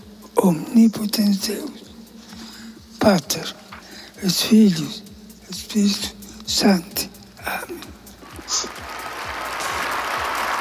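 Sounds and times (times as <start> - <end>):
speech: 0.4 - 1.8, 3.0 - 3.6, 4.2 - 5.1, 5.7 - 7.9
large crowd applauding after the Easter Sunday papal blessing in St. Peter's Square: 8.3 - 10.5.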